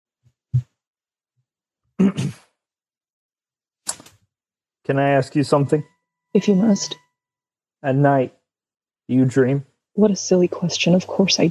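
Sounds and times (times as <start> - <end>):
man clearing throat: 2.0 - 2.4
speech: 4.9 - 7.0, 7.8 - 8.4, 9.1 - 11.4.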